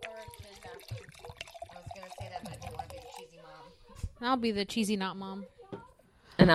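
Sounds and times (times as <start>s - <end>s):
wine pouring into a glass: 0.0s - 3.3s
speech: 4.2s - 5.6s, 6.4s - 6.5s.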